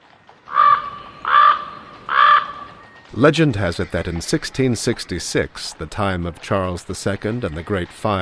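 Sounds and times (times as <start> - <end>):
Common Raven giving harsh hoarse croaking caws: 0.5 - 2.8
speech: 3.2 - 8.2.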